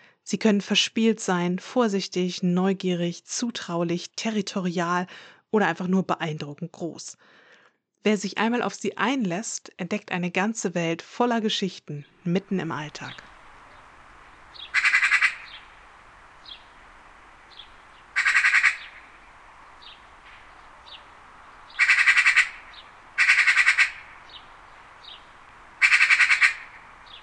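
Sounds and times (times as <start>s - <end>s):
speech: 0.3s - 7.4s, 8.0s - 13.3s
softer short corvid calls: 13.1s - 15.8s, 17.5s - 27.2s
harsh corvid squawks: 14.6s - 15.7s, 18.1s - 19.1s, 21.7s - 24.2s, 25.8s - 26.8s.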